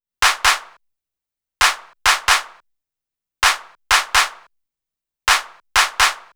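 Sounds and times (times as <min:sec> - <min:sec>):
hip hop claps: 0:00.2 - 0:00.7, 0:01.6 - 0:02.5, 0:03.4 - 0:04.3, 0:05.3 - 0:06.3.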